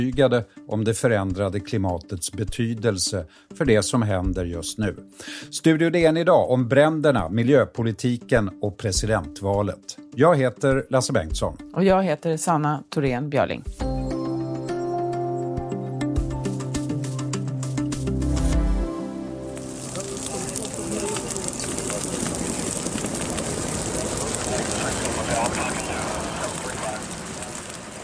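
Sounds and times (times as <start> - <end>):
speech: 0.0 - 14.0
short musical jingle: 13.8 - 21.6
wildfire roaring and crackling: 16.1 - 28.0.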